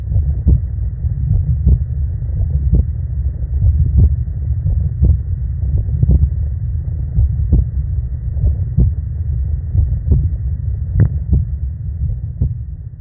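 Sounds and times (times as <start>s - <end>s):
human heartbeat: 0.0s - 3.0s, 3.6s - 6.4s, 7.1s - 9.0s, 9.7s - 10.4s, 11.0s - 12.7s
low rumbling hum: 0.0s - 12.9s.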